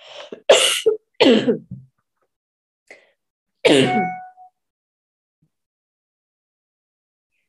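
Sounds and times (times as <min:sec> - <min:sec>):
person coughing harshly: 0:00.5 - 0:01.7, 0:03.7 - 0:04.2
throat-clearing rasp: 0:03.7 - 0:04.1.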